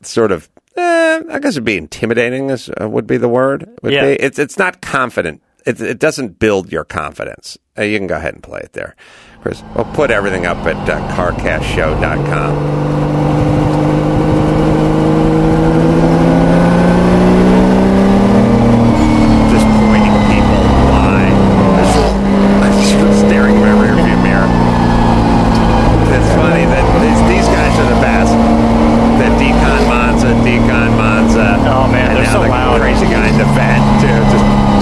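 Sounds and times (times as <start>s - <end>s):
speech: 0.0s - 12.9s
race car engine roaring past on a track at historic races: 9.4s - 34.8s.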